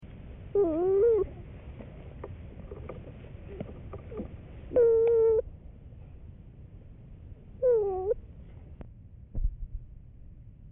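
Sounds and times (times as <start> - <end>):
cooing: 0.5 - 1.5, 3.5 - 5.4, 7.6 - 8.2.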